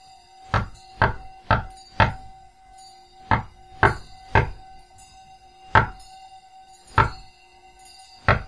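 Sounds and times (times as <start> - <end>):
faint steady hum: 0.0 - 8.4
solid knocks on a wooden door: 0.6 - 2.3, 3.3 - 4.6, 5.8 - 6.0, 7.0 - 7.3, 8.3 - 8.4.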